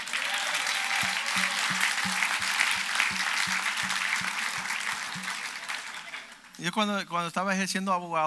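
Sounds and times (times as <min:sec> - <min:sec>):
audience applause: 0:00.0 - 0:06.6
low thumping beat: 0:01.0 - 0:05.6
speech: 0:06.6 - 0:08.2.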